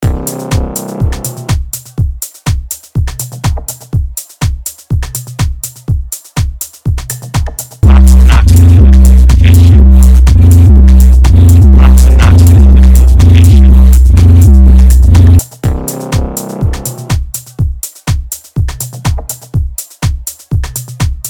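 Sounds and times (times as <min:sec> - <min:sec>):
MIDI music: 0:00.0 - 0:21.2.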